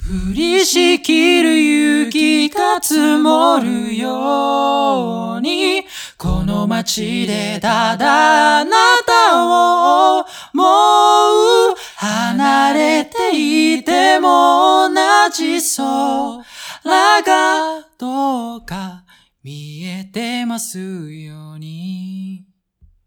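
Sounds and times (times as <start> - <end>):
chorus: 0.0 - 18.2.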